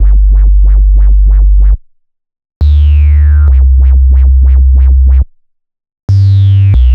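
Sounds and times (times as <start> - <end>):
bass loop in G major and C major: 0.0 - 1.9, 2.6 - 5.4, 6.1 - 6.9.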